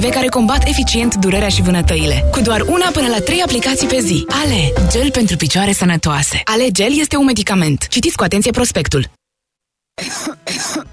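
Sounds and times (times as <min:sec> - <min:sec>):
speech: 0:00.0 - 0:09.2, 0:10.0 - 0:10.9
loud wet phlegmy coughs: 0:10.0 - 0:10.9.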